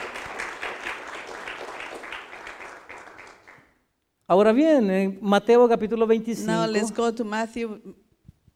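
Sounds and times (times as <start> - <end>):
church audience applauding: 0.0 - 3.8
speech: 4.3 - 8.0.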